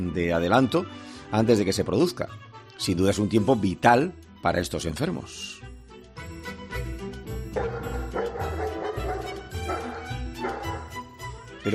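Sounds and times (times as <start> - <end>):
speech: 0.0 - 5.7
medical alert assistance dog barking and yipping: 7.6 - 11.0.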